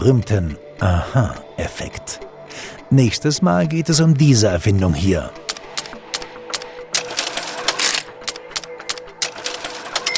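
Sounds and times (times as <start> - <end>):
speech: 0.0 - 2.3, 2.9 - 5.5
mechanical cash register being operated: 5.5 - 10.1.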